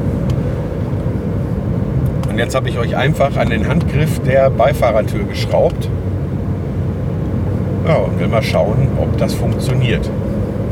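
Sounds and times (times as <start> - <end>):
low engine and road rumble inside a moving car: 0.0 - 10.7
speech: 2.4 - 6.0, 7.8 - 10.2.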